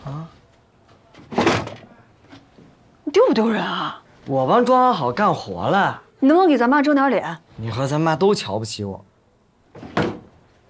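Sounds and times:
door being shut with a solid thudding close: 0:01.2 - 0:02.0, 0:09.7 - 0:10.4
speech: 0:03.2 - 0:09.1.

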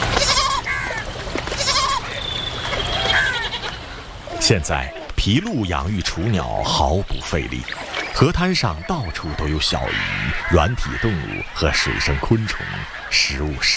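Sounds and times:
wild goats bleating at a river: 0:00.1 - 0:01.0, 0:01.5 - 0:02.2, 0:03.1 - 0:05.1
speech: 0:04.5 - 0:13.7.

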